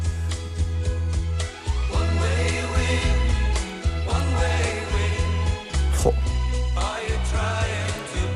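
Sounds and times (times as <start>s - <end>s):
1970s Dutch pop song: 1.1s - 8.3s.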